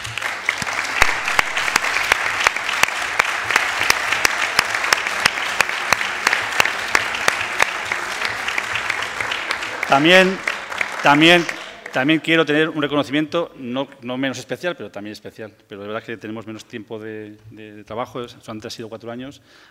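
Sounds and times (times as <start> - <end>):
audience applause in a room full of people: 0.0 - 12.6
speech: 9.9 - 19.6.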